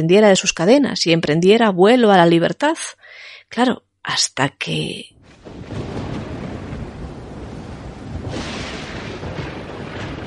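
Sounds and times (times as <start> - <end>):
speech: 0.0 - 5.7
rain in a storm at sea: 5.2 - 10.2
thunder rumbling in a storm at sea: 5.2 - 10.2
wind in a storm at sea: 5.2 - 10.2.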